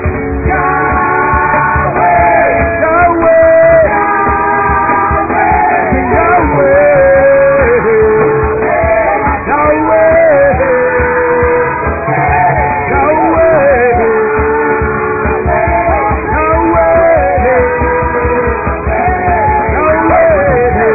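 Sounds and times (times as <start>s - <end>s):
crowd in celebratory shouting and whooping: 0.0s - 20.9s.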